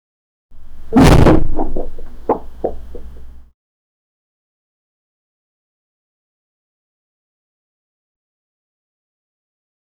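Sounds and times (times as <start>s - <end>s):
comedic thud: 0.9s - 3.2s
person falling: 0.9s - 3.2s.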